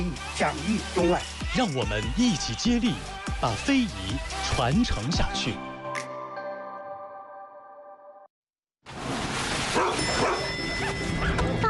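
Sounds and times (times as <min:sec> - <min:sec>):
speech: 0:00.0 - 0:05.7
excited dog barking and yelping: 0:09.8 - 0:11.5.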